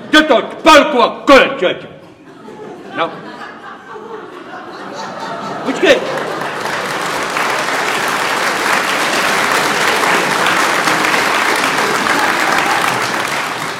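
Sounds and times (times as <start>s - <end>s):
speech: 0.2s - 2.0s, 3.0s - 3.3s, 5.6s - 6.2s
laughter: 2.1s - 13.7s
audience clapping: 5.5s - 13.7s.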